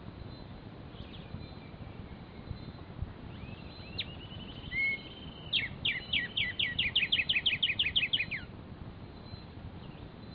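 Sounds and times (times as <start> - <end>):
black-striped sparrow Arremonops conirostris conirostris thin whistles: 3.3 - 8.5.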